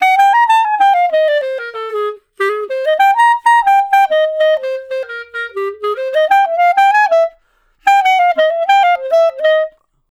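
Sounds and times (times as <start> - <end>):
traditional jazz clarinet solo: 0.0 - 10.1.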